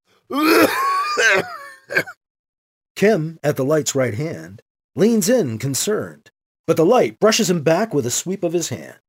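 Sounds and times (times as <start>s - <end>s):
speech: 0.3s - 0.7s, 3.0s - 9.0s
man's dry raspy cough: 0.3s - 2.2s.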